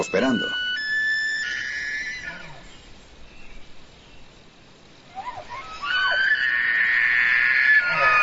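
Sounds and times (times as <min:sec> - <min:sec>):
Manitoba elk bull combat call bugling: 0:00.0 - 0:02.9, 0:05.0 - 0:08.2.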